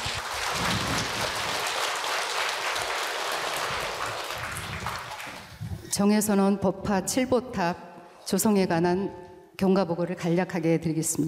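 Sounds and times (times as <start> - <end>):
audience applause: 0.0 - 5.6
speech: 6.0 - 11.2.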